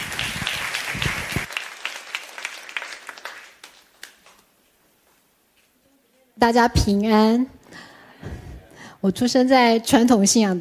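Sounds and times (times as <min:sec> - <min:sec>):
audience applause: 0:00.0 - 0:04.4
speech: 0:06.4 - 0:07.6, 0:09.0 - 0:10.5.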